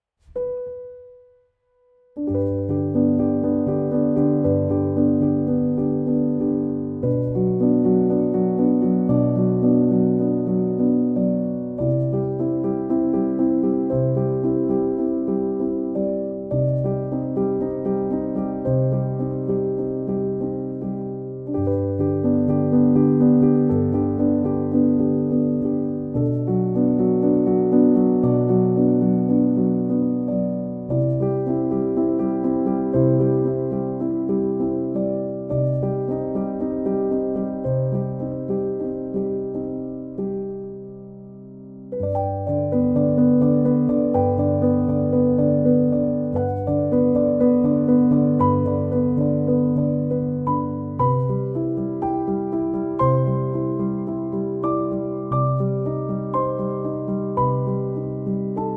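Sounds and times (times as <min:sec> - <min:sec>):
whisper calm piano: 0:00.0 - 0:58.7.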